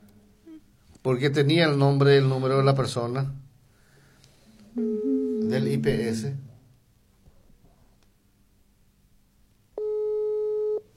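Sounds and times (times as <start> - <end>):
faint hiss: 0.0 - 10.9
speech: 1.0 - 3.4, 5.5 - 6.5
telephone busy signal during a call: 4.8 - 6.2, 9.8 - 10.8.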